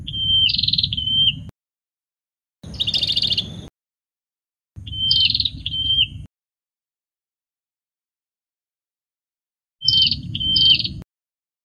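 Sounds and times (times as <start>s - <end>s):
prinia singing: 0.0s - 1.5s, 2.6s - 3.7s, 4.8s - 6.3s, 9.8s - 11.0s.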